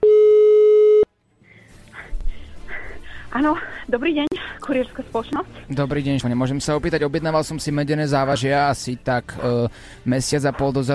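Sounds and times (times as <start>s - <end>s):
telephone ringing tone of an outgoing call: 0.0s - 1.1s
speech: 3.4s - 10.9s.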